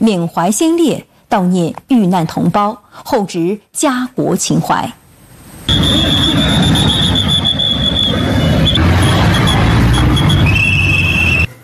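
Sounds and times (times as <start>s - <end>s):
speech: 0.0s - 5.0s, 5.6s - 7.5s
loud city traffic noise: 5.4s - 11.6s
air-raid siren wailing in a steady high tone: 5.7s - 11.6s.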